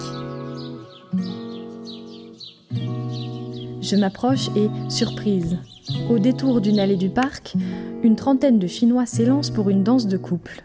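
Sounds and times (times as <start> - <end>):
birds chirping in a park: 0.0 - 8.1
music playing: 0.0 - 8.6
speech: 3.9 - 10.6.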